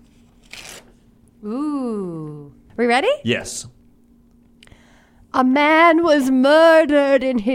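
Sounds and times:
faint room hum: 0:00.0 - 0:07.5
paper being torn: 0:00.1 - 0:01.0
speech: 0:01.4 - 0:03.8, 0:05.3 - 0:07.5.

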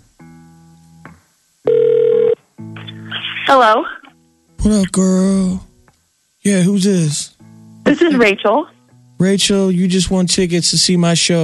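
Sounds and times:
electronic ringback tone of an outgoing telephone call: 0:01.7 - 0:02.4
speech: 0:03.5 - 0:03.9, 0:04.6 - 0:05.7, 0:06.4 - 0:11.4.

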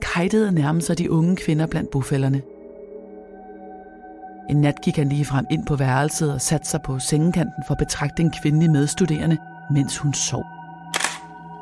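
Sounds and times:
speech: 0:00.2 - 0:02.5, 0:04.5 - 0:10.6
camera shutter click: 0:11.0 - 0:11.3.

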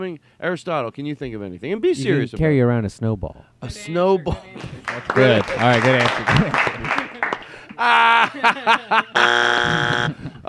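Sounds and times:
speech: 0:00.0 - 0:07.0, 0:07.8 - 0:10.4
voices and chuckling: 0:04.0 - 0:10.4
malfunctioning game show buzzer blaring: 0:09.1 - 0:10.2.

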